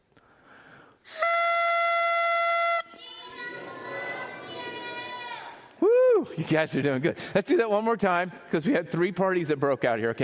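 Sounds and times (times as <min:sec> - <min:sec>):
small toy kazoo horn or whistle blown as a cue: 0:01.1 - 0:02.9
room full of voices including children murmuring and calling out: 0:02.9 - 0:05.8
speech: 0:06.4 - 0:10.2.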